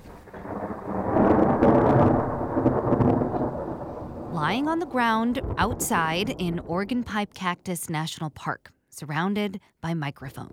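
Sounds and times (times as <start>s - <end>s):
steady rain during a monsoon storm: 0.0s - 7.0s
deep rolling thunder from a monsoon storm in Organ Pipe Cactus National Park: 0.0s - 7.4s
speech: 4.5s - 10.5s.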